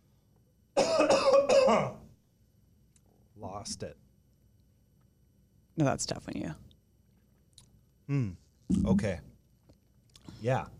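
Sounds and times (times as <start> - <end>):
person coughing with something caught in the throat: 0.8 - 2.0
throat clearing: 0.8 - 2.0, 8.1 - 8.4
speech: 1.7 - 2.0, 3.4 - 4.0, 5.8 - 6.6, 8.1 - 9.3, 10.4 - 10.7.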